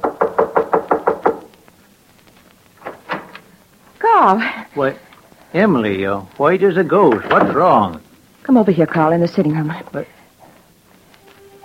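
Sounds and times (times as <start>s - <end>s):
sharp loud knocks on a door: 0.0s - 1.5s
speech: 4.2s - 10.2s.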